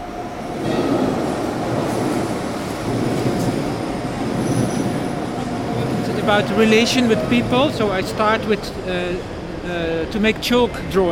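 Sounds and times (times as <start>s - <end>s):
subway train rumbling through a metro tunnel: 0.0s - 11.1s
clatter of subway train wheels on rails: 0.6s - 8.8s
speech: 6.3s - 11.1s.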